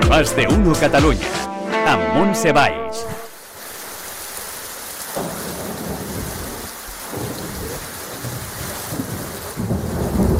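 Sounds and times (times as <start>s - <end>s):
speech: 0.2s - 3.2s
heavy rain: 3.3s - 10.3s
low thunder rumbling: 5.2s - 10.3s.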